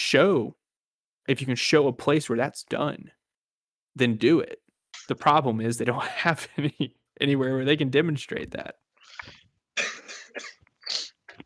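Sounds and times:
speech: 0.0 - 0.6, 1.3 - 3.2, 4.0 - 9.4
harsh coughs: 9.8 - 11.2.

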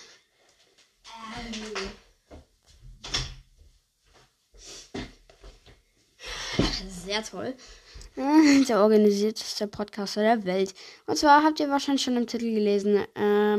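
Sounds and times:
door being pushed shut: 3.0 - 3.5
speech: 6.6 - 13.5.

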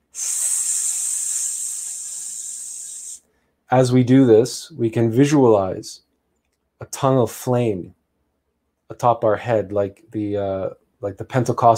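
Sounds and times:
person making a sustained sss hiss imitating a snake: 0.0 - 3.2
speech: 3.7 - 6.0, 6.8 - 8.0, 8.9 - 11.7.

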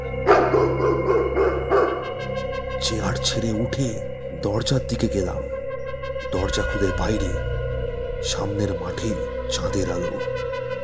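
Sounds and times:
large grey greyhound barking outside at night: 0.2 - 2.4
speech: 2.8 - 5.6, 6.3 - 7.5, 8.2 - 10.6.

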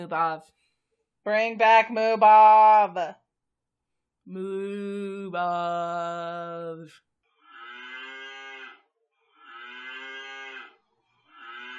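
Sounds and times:
speech: 0.0 - 0.6, 1.2 - 3.2, 4.2 - 7.1
cow mooing: 7.4 - 11.7.

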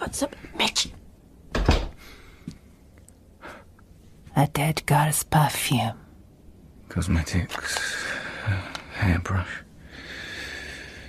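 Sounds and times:
speech: 0.1 - 1.0, 4.4 - 6.0, 6.9 - 9.6
door creaking as it swings open: 1.5 - 2.0.

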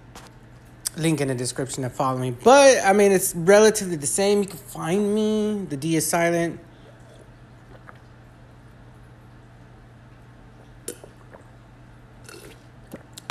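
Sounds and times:
low steady hum: 0.0 - 13.3
speech: 1.0 - 6.7
person gulping water: 6.9 - 8.4, 10.5 - 13.3.

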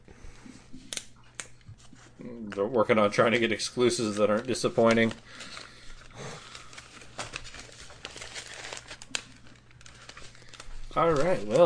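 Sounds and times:
speech: 2.2 - 5.6, 11.0 - 11.6
candy bar wrapper crinkling: 2.3 - 11.6.

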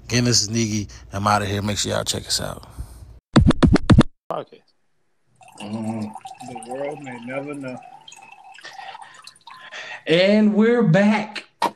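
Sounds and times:
speech: 0.1 - 2.8, 4.3 - 4.7, 5.6 - 7.9, 10.1 - 11.4
drink being poured: 5.4 - 9.9.

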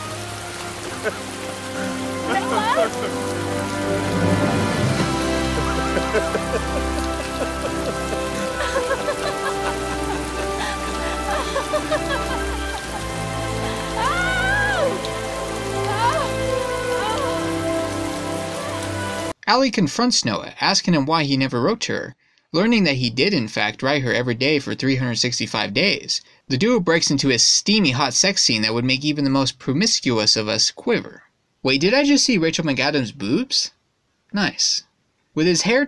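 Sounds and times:
heavy rain falling: 0.0 - 19.4
couple calling out and laughing manically: 0.9 - 3.4, 5.5 - 17.6
speech: 1.0 - 1.4, 2.3 - 4.4, 6.1 - 8.0, 19.5 - 35.8.

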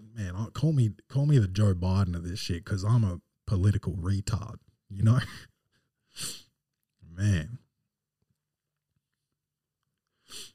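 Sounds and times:
speech: 0.4 - 5.5, 6.2 - 6.4, 7.2 - 7.6
breaths: 5.6 - 6.5, 10.0 - 10.5
sharp nasal sniff: 6.2 - 6.5, 10.2 - 10.5.

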